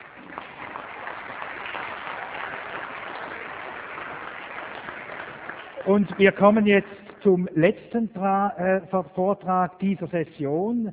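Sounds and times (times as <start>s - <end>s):
audience applause: 0.0s - 6.7s
speech: 5.8s - 10.9s.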